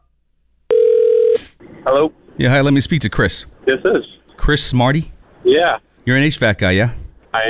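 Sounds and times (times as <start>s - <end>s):
telephone dial tone: 0.7s - 1.3s
speech: 1.9s - 7.4s.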